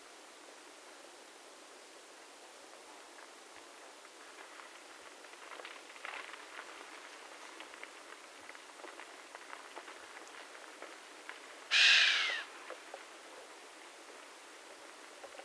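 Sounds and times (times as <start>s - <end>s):
faint ticks and rustles: 0.4s - 15.4s
chamois call, a harsh hissing whistle: 11.7s - 12.5s.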